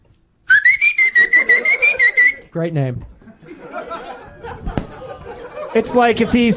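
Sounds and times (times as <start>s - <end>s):
person whistling into a microphone: 0.5s - 2.4s
laughter: 1.0s - 2.4s, 3.2s - 6.5s
speech: 2.6s - 3.2s, 5.8s - 6.5s.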